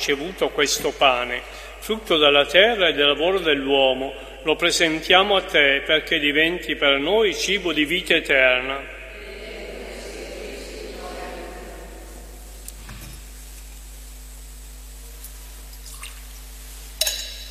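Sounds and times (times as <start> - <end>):
speech: 0.0 - 9.0
low murmur of voice: 9.1 - 12.5
water trickling and dripping into a chalice of wine: 15.7 - 16.5.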